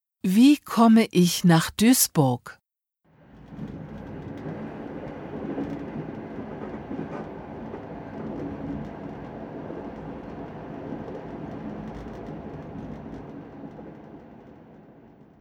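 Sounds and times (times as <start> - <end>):
speech: 0.2 - 2.6
train rolling along the rails: 3.2 - 15.3.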